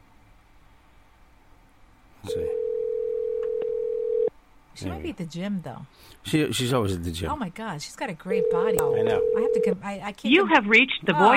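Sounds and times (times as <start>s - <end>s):
speech: 2.2s - 2.6s, 4.8s - 11.3s
telephone ringing tone on speakerphone call: 2.3s - 4.3s, 8.4s - 9.8s.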